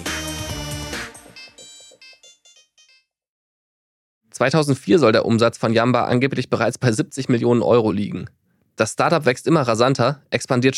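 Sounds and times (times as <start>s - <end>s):
bright electronic mobile phone ringtone jingle: 1.2s - 3.2s
speech: 4.4s - 10.7s.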